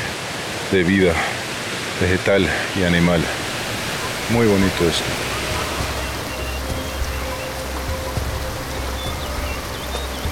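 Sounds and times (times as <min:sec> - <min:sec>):
waterfall on a jungle river rushing over rocks: 0:00.0 - 0:10.3
speech: 0:00.7 - 0:01.4, 0:02.0 - 0:03.4, 0:04.3 - 0:05.4
faint chirps: 0:03.6 - 0:10.3.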